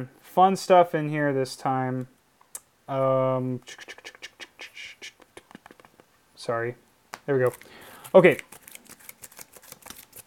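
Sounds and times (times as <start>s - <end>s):
speech: 0.0s - 2.2s, 2.9s - 4.2s, 6.4s - 8.5s
trading cards being shuffled: 7.2s - 10.2s.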